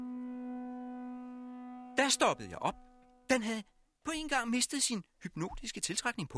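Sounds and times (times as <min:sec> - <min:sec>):
siren-like mechanical howl from a 30-metre metal Martian machine tower with built-in siren: 0:00.0 - 0:03.2
speech: 0:02.0 - 0:06.3.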